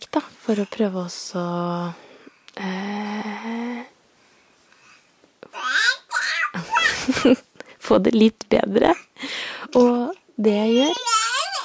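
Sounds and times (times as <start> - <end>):
speech: 0.1 - 3.3, 7.2 - 9.1, 9.7 - 11.0
baby babbling and giggling: 5.4 - 7.4, 9.8 - 11.6.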